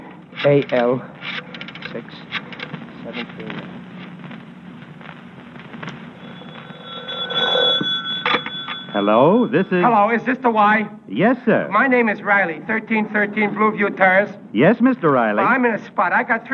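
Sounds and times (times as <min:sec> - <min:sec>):
speech: 0:00.4 - 0:02.4, 0:03.0 - 0:03.8, 0:08.9 - 0:16.5
telephone ringing tone: 0:06.0 - 0:10.2.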